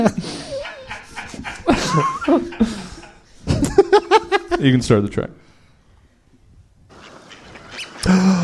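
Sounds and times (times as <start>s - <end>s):
speech: 0.0s - 0.4s, 4.6s - 5.5s
laughter: 0.0s - 4.7s
faint bird calls: 6.9s - 8.4s.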